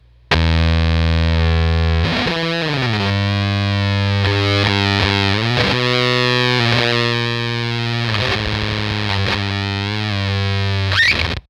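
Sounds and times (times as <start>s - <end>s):
guitar through Fuzz Factory fuzz: 0.0s - 11.4s.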